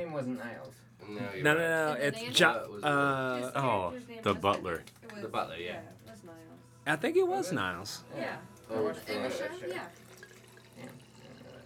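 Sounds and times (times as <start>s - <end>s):
speech: 0.2s - 10.0s
wine pouring into a glass: 9.3s - 11.6s.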